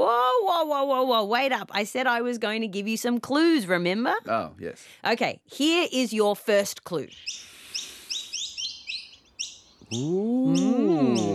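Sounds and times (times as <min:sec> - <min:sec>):
speech: 0:00.6 - 0:07.5, 0:09.9 - 0:11.3
bird chirping: 0:06.9 - 0:11.3.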